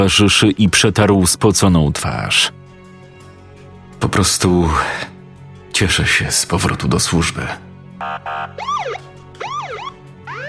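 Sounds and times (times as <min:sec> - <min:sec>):
speech: 0:00.0 - 0:02.6, 0:04.0 - 0:05.1, 0:05.7 - 0:09.0
fire engine sirens wailing: 0:08.0 - 0:10.4.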